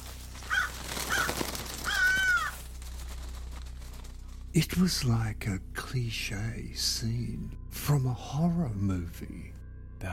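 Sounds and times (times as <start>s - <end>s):
flock of crows cawing: 0.0s - 4.0s
speech: 4.6s - 10.1s.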